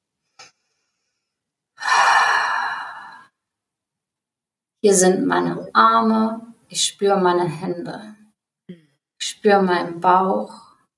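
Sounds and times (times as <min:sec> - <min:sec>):
deep breath in and out: 0:00.4 - 0:03.4
speech: 0:04.8 - 0:08.2, 0:09.4 - 0:10.6.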